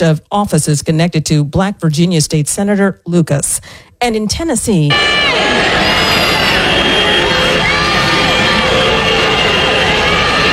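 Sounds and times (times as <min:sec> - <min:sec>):
speech: 0:00.0 - 0:05.9
crowd of protesters roaring outside the Tennessee state legislature: 0:04.9 - 0:10.5.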